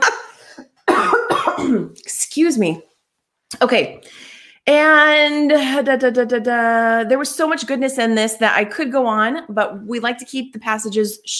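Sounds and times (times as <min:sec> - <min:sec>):
person coughing harshly: 0:00.0 - 0:02.0
speech: 0:01.7 - 0:02.9, 0:03.5 - 0:11.3.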